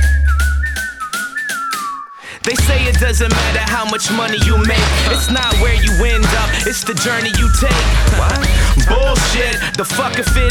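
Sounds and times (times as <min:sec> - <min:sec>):
deep bass: 0:00.0 - 0:01.0, 0:02.6 - 0:03.8, 0:04.4 - 0:06.8, 0:07.4 - 0:10.4
whistled melody: 0:00.0 - 0:10.4
speech: 0:02.4 - 0:10.4
drum hits: 0:02.5 - 0:09.7.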